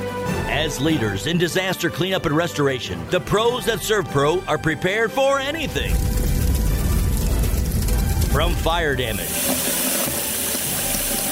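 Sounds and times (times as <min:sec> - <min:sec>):
speech: 0:00.6 - 0:06.2, 0:08.4 - 0:09.6
running water: 0:05.6 - 0:11.3.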